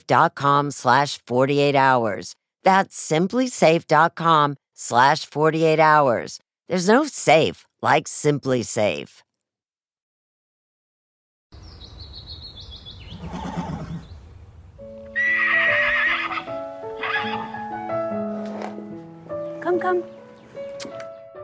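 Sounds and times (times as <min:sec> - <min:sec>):
speech: 0:00.0 - 0:09.2, 0:19.8 - 0:20.2
faint birds chirping: 0:11.6 - 0:15.1, 0:19.3 - 0:21.4
horse neighing: 0:13.1 - 0:14.1, 0:15.0 - 0:17.7.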